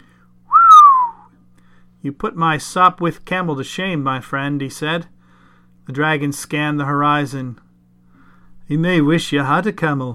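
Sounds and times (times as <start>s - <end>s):
appreciative human whistle gliding downward: 0.5s - 1.4s
speech: 2.0s - 5.2s, 5.9s - 7.6s, 8.7s - 10.1s.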